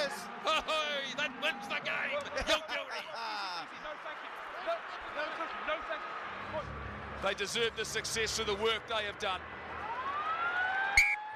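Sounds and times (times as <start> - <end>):
low roar at a rugby stadium: 0.0 - 11.3
laughter: 0.2 - 1.4, 2.1 - 4.0
speech: 4.0 - 9.5
full-time siren wailing at a rugby stadium: 9.7 - 11.3.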